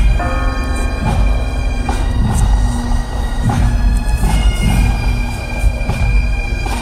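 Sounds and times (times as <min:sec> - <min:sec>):
church bells tolling after a funeral Mass: 0:00.2 - 0:05.5
bagpipes playing a tune over a drone after a funeral Mass: 0:00.2 - 0:06.7.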